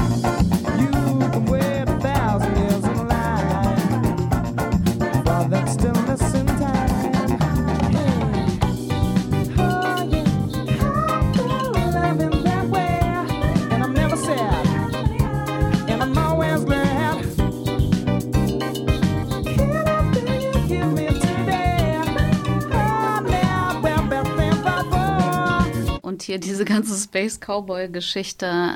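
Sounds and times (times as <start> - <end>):
upbeat funk track with samba-style Latin groove and busy percussion: 0.0 - 26.0
speech: 26.3 - 28.7.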